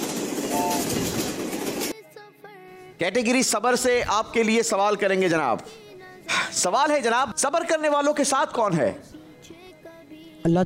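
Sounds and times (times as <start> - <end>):
train rumbling along the tracks: 0.0 - 1.9
speech: 3.0 - 9.6, 10.4 - 10.6.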